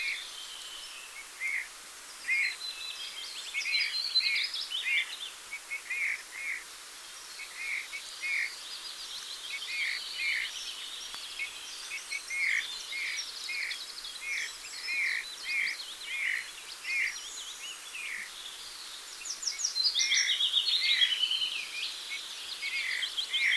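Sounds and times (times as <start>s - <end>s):
chorus of thin high chattering birds: 0.0s - 23.5s.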